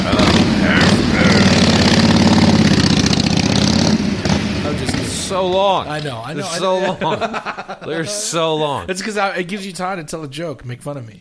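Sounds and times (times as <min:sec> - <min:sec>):
motorcycle engine revving: 0:00.0 - 0:06.8
laughter: 0:00.1 - 0:01.9, 0:04.7 - 0:09.1
speech: 0:05.4 - 0:11.1.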